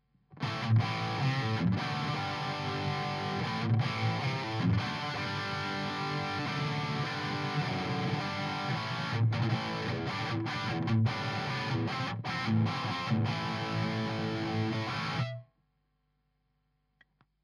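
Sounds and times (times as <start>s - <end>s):
PRS electric guitar rhythm playing through EHX 5150 pedal, SM57 microphone: 0.4s - 15.4s.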